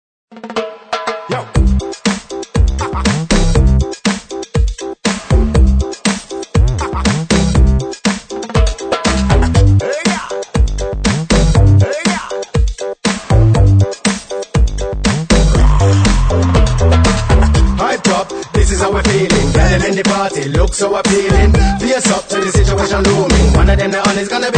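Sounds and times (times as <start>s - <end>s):
ragga track with dub hip hop pop dubstep and reggae elements: 0.3s - 24.5s
vocals: 1.1s - 2.0s, 9.5s - 10.7s, 11.7s - 12.6s, 15.6s - 24.5s.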